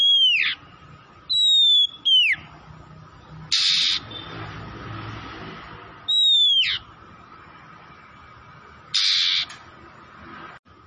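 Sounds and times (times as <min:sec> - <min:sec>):
Oriental magpie-robin from Tretes Indonesia singing vigorously: 0:00.0 - 0:00.6, 0:01.3 - 0:02.5, 0:06.1 - 0:06.9, 0:09.0 - 0:09.5.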